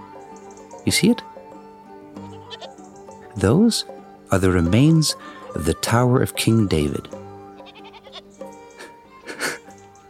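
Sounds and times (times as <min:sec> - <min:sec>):
speech: 0:00.9 - 0:01.3, 0:03.4 - 0:07.2
several goats bleating: 0:02.2 - 0:03.4, 0:07.5 - 0:08.3.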